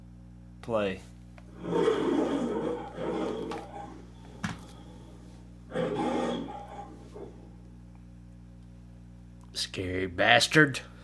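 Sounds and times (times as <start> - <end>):
speech: 0.7 - 3.2, 9.6 - 10.9
lion roaring in rough breathy bursts: 1.5 - 7.7.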